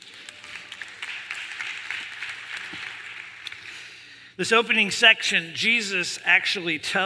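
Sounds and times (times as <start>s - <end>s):
audience applause: 0.0s - 3.6s
speech: 4.4s - 7.0s.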